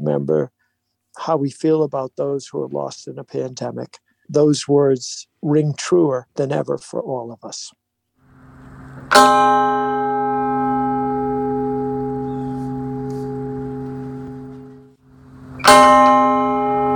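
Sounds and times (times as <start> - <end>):
speech: 0.1 - 0.6, 1.2 - 7.8, 9.1 - 10.2, 15.7 - 16.2
hand-struck clock tower chime: 9.1 - 16.9.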